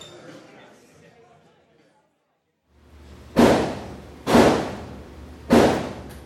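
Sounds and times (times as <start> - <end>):
muffled gunshots at an indoor shooting range through walls: 3.3 - 6.1.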